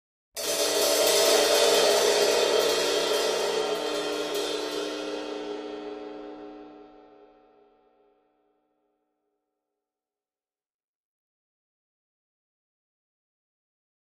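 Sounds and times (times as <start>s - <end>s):
large drum cymbal trill: 0.4s - 7.5s.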